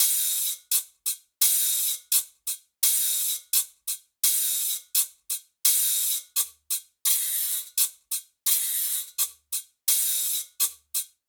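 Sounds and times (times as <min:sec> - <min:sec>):
guajira guiro rhythm at 85 bpm: 0:00.0 - 0:11.2.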